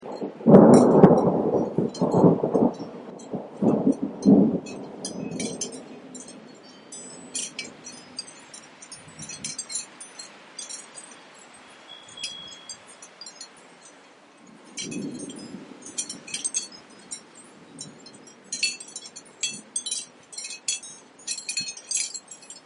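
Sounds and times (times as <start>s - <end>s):
thunderstorm: 0.0s - 8.2s, 14.5s - 19.7s.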